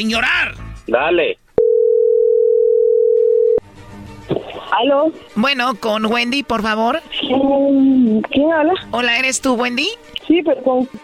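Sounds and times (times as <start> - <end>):
speech: 0.0 - 1.4, 4.8 - 11.0
steady telephone tone while a call is dialed: 1.6 - 3.6.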